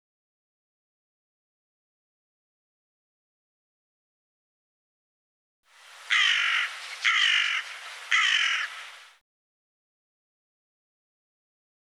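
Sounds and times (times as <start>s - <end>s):
bird harsh raspy caws: 5.8s - 9.2s.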